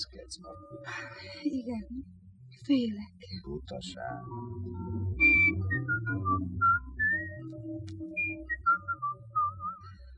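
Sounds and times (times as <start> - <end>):
low rumbling background: 0.0 - 6.7
speech: 0.1 - 6.7
person whistling a wavering tuneful melody: 5.2 - 9.9.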